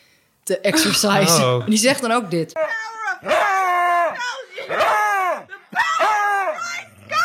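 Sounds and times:
speech: 0.5 - 3.5
dog howling with a rough growling edge: 3.2 - 4.2, 4.8 - 7.2.

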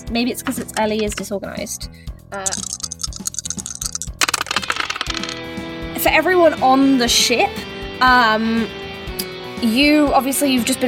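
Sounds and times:
speech: 0.1 - 2.8, 6.0 - 8.8, 9.6 - 10.8
plastic dice clattering as a player rummages: 2.5 - 5.4.

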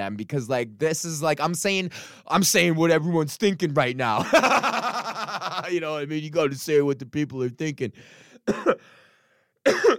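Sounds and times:
speech: 0.0 - 5.0, 5.7 - 9.0, 9.6 - 9.9
laughter: 4.2 - 5.8
person coughing: 8.4 - 8.9, 9.6 - 9.9.

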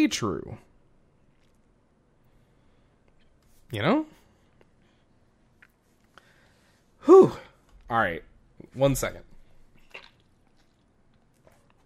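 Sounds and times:
speech: 0.0 - 0.7, 3.7 - 4.2, 7.0 - 9.3
person drinking water with a wet gulp and swallow: 9.8 - 10.9.

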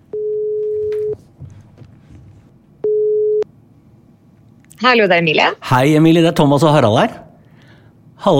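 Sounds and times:
telephone ringing tone while a call is placed: 0.1 - 1.2, 2.8 - 3.4
speech: 4.8 - 7.2, 8.2 - 8.3.

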